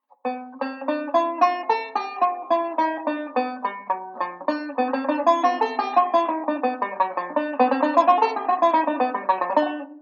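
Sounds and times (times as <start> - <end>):
banjo playing a ii V speed drill: 0.2 - 9.9.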